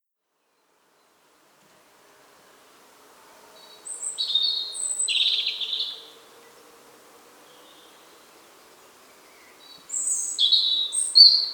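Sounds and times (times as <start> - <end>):
European robin singing, Erithacus rubecula: 3.6 - 6.2, 9.1 - 11.5.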